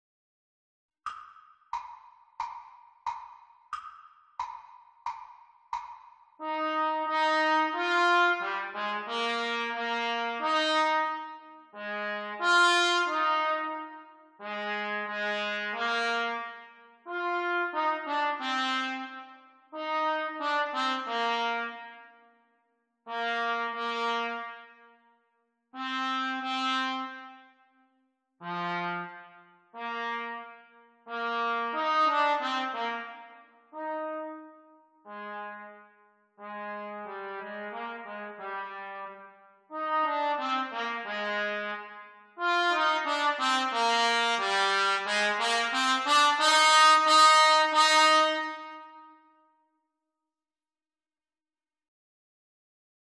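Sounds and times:
trumpet duet of a sea song at exam speed: 0:06.4 - 0:22.2, 0:23.1 - 0:25.0, 0:25.8 - 0:27.6, 0:28.4 - 0:49.3.

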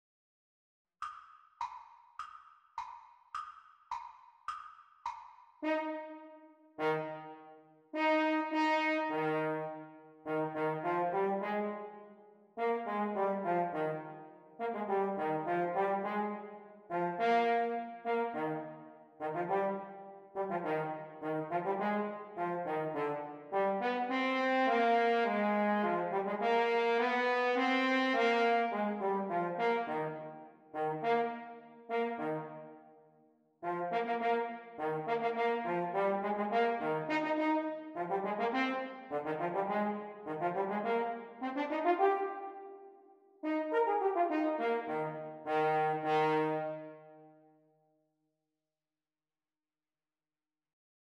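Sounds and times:
French horn duet playalong: 0:05.6 - 0:32.8, 0:33.6 - 0:42.7, 0:43.4 - 0:47.2.

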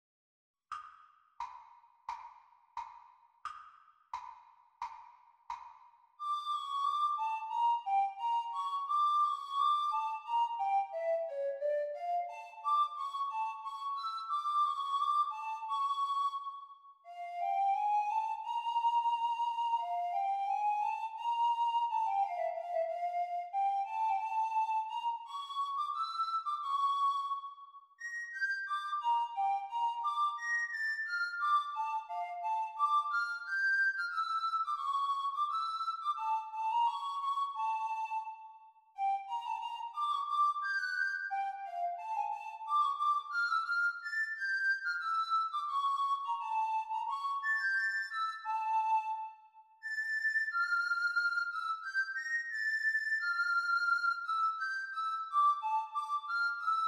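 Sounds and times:
descant recorder performance: 0:06.2 - 0:56.8.

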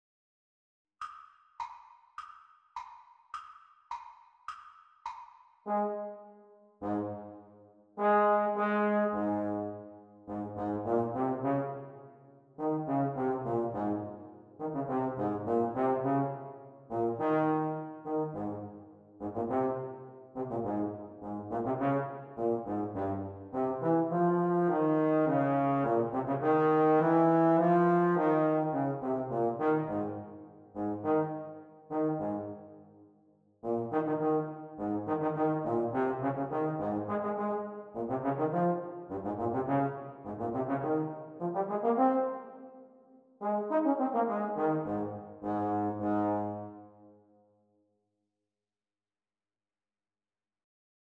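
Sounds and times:
playalong music for trombone: 0:05.7 - 0:06.2, 0:06.8 - 0:07.4, 0:08.0 - 0:11.8, 0:12.6 - 0:32.7, 0:33.6 - 0:42.6, 0:43.4 - 0:46.8.

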